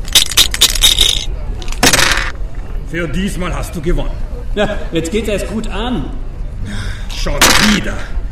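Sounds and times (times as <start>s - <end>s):
dice being thrown for a gambling game: 0.1s - 2.3s
speech: 2.9s - 8.2s.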